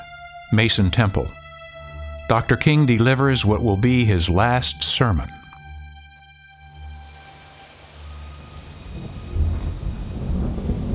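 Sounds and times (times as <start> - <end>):
speech: 0.5 - 1.4, 2.3 - 5.4
storm noise: 7.4 - 10.9
rolling thunder during a storm: 8.2 - 10.9.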